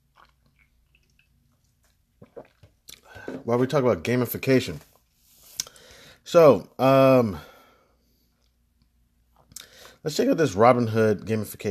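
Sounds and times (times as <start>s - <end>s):
soft wet lip and mouth noises: 0.0s - 3.1s
person sipping a drink: 0.0s - 3.5s
swallow: 2.2s - 3.5s
speech: 3.4s - 4.9s, 6.3s - 7.5s, 10.0s - 11.6s.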